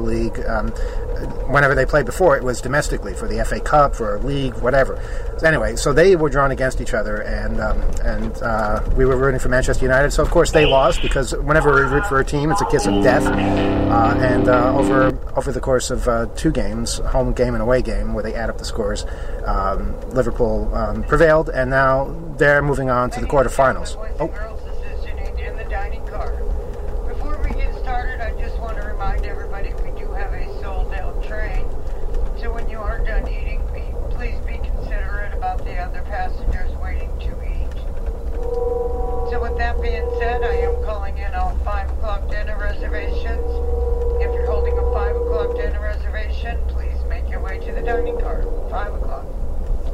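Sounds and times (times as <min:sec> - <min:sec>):
train public address announcement: 0:00.0 - 0:15.4, 0:16.0 - 0:31.8, 0:32.4 - 0:49.4
speech: 0:00.0 - 0:24.5, 0:38.6 - 0:43.6, 0:47.5 - 0:49.3
low rumble of moving train wheels and engine: 0:00.0 - 0:49.9
brief tonal chimes: 0:12.6 - 0:15.1, 0:38.4 - 0:49.2.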